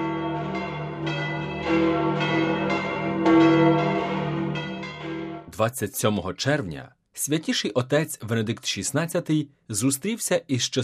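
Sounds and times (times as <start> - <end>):
large church bells of St Peter's Basilica pealing: 0.0 - 5.6
speech: 1.7 - 2.1, 5.6 - 10.8.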